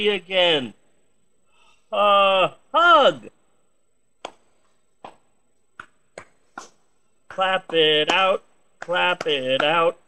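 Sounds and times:
speech: 0:00.0 - 0:00.8, 0:01.9 - 0:03.4, 0:07.4 - 0:10.0
hand claps: 0:04.2 - 0:10.0.

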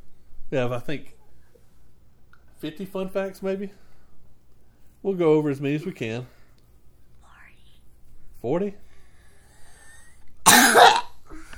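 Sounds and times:
speech: 0:00.5 - 0:01.2, 0:02.6 - 0:03.8, 0:05.0 - 0:06.4, 0:08.4 - 0:08.8
single harsh cough: 0:10.4 - 0:11.5.

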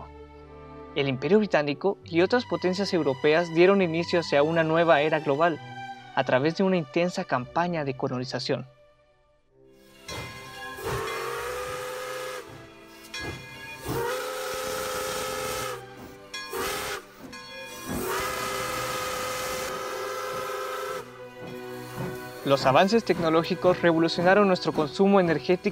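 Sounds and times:
speech: 0:01.0 - 0:08.8, 0:22.5 - 0:25.7
steam engine whistle blasts: 0:09.8 - 0:25.7.

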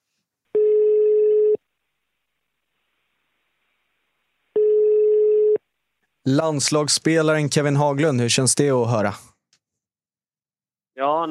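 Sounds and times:
outgoing phone call ringback tone: 0:00.6 - 0:01.6, 0:04.6 - 0:05.6
speech: 0:06.3 - 0:09.3, 0:11.0 - 0:11.2.

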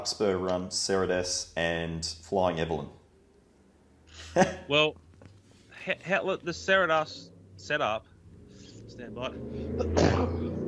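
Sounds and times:
speech: 0:00.0 - 0:03.0, 0:04.2 - 0:05.0, 0:05.8 - 0:08.1, 0:08.9 - 0:10.6
laughter: 0:04.1 - 0:04.8
person sneezing after a quick inhale: 0:09.8 - 0:10.6.

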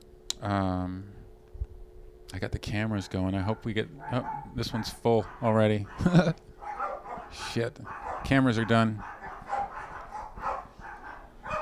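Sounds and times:
speech: 0:00.4 - 0:01.1, 0:02.3 - 0:06.5, 0:07.3 - 0:09.2
several small dogs barking and yapping: 0:03.4 - 0:11.6.

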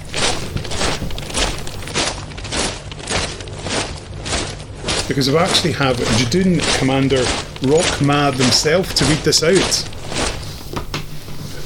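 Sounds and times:
heavy stomping footsteps: 0:00.0 - 0:11.6
speech: 0:05.1 - 0:09.9.

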